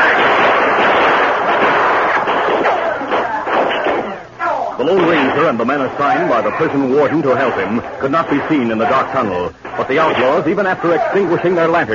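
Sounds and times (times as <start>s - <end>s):
gunfire in a shootout in a dark tunnel: 0.0s - 4.3s, 5.0s - 5.6s, 7.3s - 10.5s
speech: 5.5s - 11.9s.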